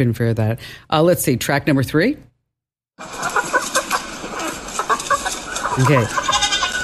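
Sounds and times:
speech: 0.0 - 2.3, 3.0 - 3.2, 5.8 - 6.3
chicken clucking and squawking: 3.0 - 6.8.

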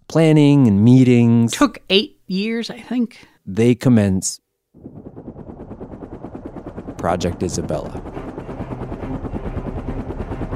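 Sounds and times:
speech: 0.1 - 5.4, 7.0 - 8.2
MD-500 small single-turbine five-blade helicopter rotor chop in the Galápagos: 4.8 - 10.5.

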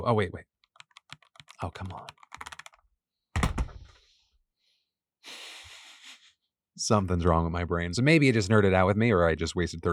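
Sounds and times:
speech: 0.0 - 0.5, 1.6 - 2.2, 6.8 - 9.9
typing on a computer keyboard: 0.6 - 2.8
heavy thunk of keyboard keys: 3.4 - 4.0.

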